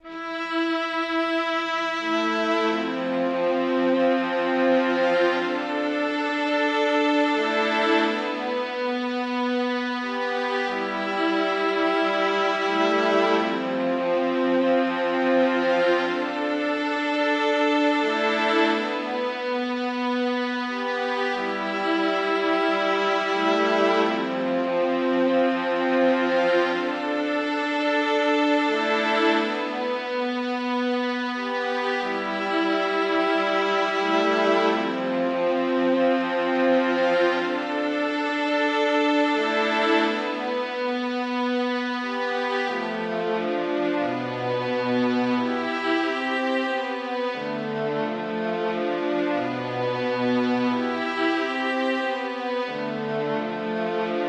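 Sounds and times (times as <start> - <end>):
concerto music: 0.0 - 54.2.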